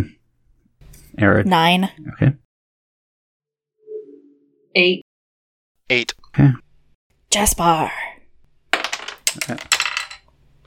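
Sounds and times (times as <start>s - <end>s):
speech: 1.2s - 2.4s, 4.7s - 5.0s, 5.9s - 6.6s, 7.3s - 8.1s, 9.4s - 9.8s
die tumbling off a desk onto a keyboard tray: 8.7s - 10.3s.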